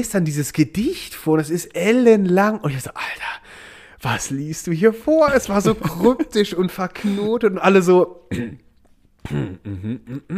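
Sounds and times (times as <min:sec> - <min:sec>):
speech: 0:00.0 - 0:08.6, 0:09.2 - 0:10.3
laughter: 0:05.3 - 0:07.4
person imitating awkward throat clearing with voiced grunts and hums: 0:08.3 - 0:10.3.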